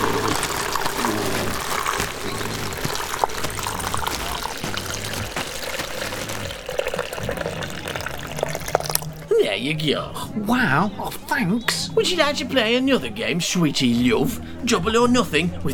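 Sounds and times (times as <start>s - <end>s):
water pouring into a plastic bag: 0.0s - 9.3s
speech: 9.6s - 15.7s.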